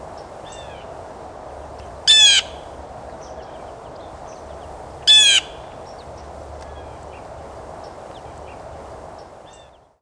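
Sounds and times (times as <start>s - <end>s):
constant low hiss: 0.0s - 9.9s
Blue Jay calling with harsh rasping notes: 2.1s - 2.7s, 5.1s - 5.7s.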